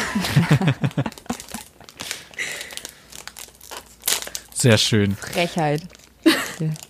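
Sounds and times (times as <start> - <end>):
laughter: 0.0 - 1.7
speech: 0.2 - 1.2, 4.6 - 6.0, 6.6 - 6.8
plastic cookie wrapper crinkling while being pulled open: 1.0 - 6.8.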